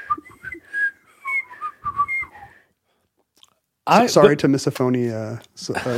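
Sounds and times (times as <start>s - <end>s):
person whistling a short wavering melody: 0.0s - 2.7s
speech: 3.9s - 5.9s.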